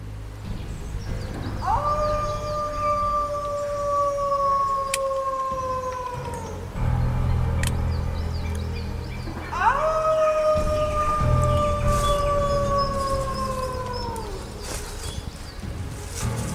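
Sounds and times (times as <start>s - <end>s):
low rumbling backdrop: 0.0s - 16.5s
wolves howling: 0.9s - 16.5s.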